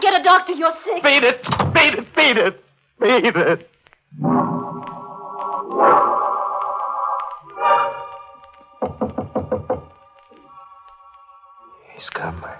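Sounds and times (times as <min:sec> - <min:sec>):
speech: 0:00.2 - 0:04.6, 0:12.0 - 0:12.5
sustained orchestral chords: 0:04.2 - 0:12.0
loud knocks on a door: 0:08.8 - 0:10.0.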